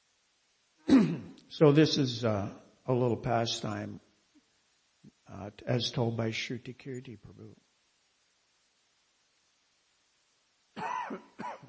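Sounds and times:
person coughing harshly: 0.9 - 1.4, 10.8 - 11.6
speech: 1.5 - 4.0, 5.3 - 7.7, 11.1 - 11.6.

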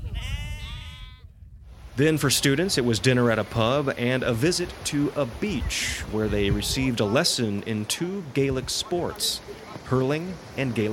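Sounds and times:
sheep bleating while herded: 0.2 - 1.2
speech: 2.0 - 10.9.

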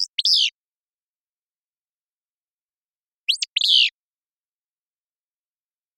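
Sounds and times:
Willow flycatcher buzzy fitz-pew song: 0.0 - 0.6, 3.3 - 4.0.

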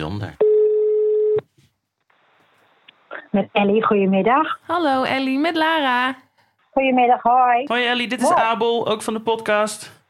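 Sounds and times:
speech: 0.0 - 0.4, 3.3 - 6.2, 6.8 - 10.0
telephone ringback tone of a live call being placed: 0.4 - 1.4.

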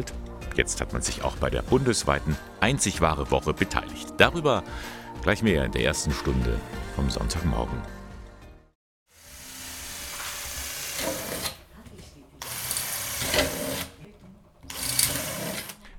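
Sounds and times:
speech: 0.0 - 8.0
power drill drilling holes into a thin metal tin can: 9.1 - 11.6, 12.4 - 14.0, 14.7 - 15.8.

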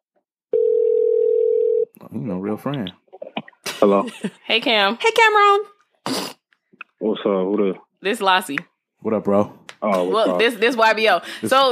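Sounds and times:
phone line ringing tone: 0.5 - 1.9
speech: 2.2 - 3.0, 3.8 - 6.3, 7.0 - 11.7.

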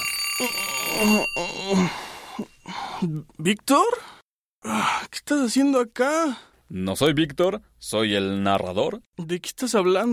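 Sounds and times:
alarm clock ringing with bright metallic tone: 0.0 - 2.8
speech: 0.4 - 10.1.

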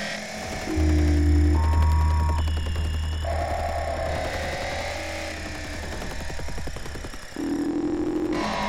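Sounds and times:
low throbbing electronic hum: 0.1 - 8.6
stacked electronic tones jumping between pitches: 0.4 - 5.6.

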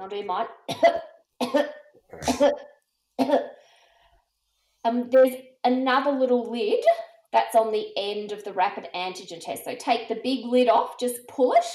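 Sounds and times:
speech: 0.0 - 3.5, 4.8 - 11.7
deliberate forced coughs: 0.7 - 2.6.

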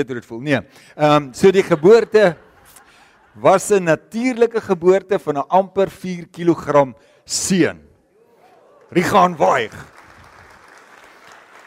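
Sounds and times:
speech: 0.0 - 2.4, 3.4 - 7.9, 8.9 - 10.0
laughter: 1.0 - 4.1
group of people applauding: 8.3 - 11.6.

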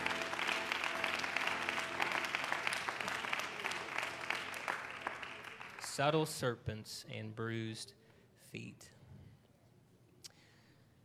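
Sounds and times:
audience clapping hands: 0.0 - 6.3
speech: 6.0 - 9.0.

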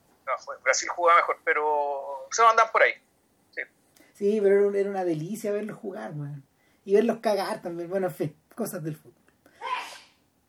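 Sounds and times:
speech: 0.4 - 3.0, 3.6 - 9.2
person sneezing: 9.6 - 10.2.

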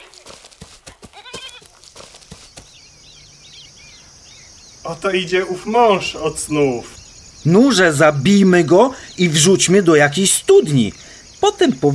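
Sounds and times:
high chirping birdsong: 0.0 - 11.9
sheep bleating: 1.0 - 1.8
steady outdoor hiss: 2.0 - 11.9
speech: 4.8 - 11.9.

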